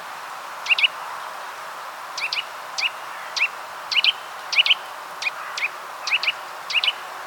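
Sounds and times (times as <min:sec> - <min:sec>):
steady background hiss: 0:00.0 - 0:07.2
Eurasian nuthatch Sitta europaea giving short sharp calls: 0:00.6 - 0:00.9, 0:02.2 - 0:07.0.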